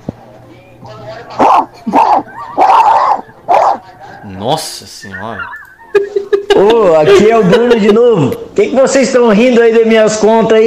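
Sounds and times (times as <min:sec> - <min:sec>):
speech: 0:00.9 - 0:02.0, 0:04.4 - 0:10.6
man imitating a dog barking with raspy woofs: 0:01.3 - 0:05.9
laughter: 0:01.3 - 0:08.0.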